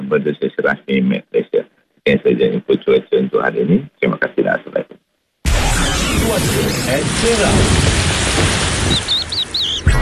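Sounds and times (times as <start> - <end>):
speech: 0.1 - 5.0, 6.3 - 9.0
low thunder rumbling: 6.1 - 9.8
heavy rain: 6.2 - 9.9
faint bird chirps: 8.9 - 9.9.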